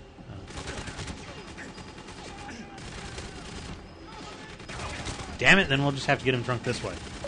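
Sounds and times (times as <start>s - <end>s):
AK rifle gunfire in a video game: 0.5s - 5.4s
speech: 5.4s - 7.1s.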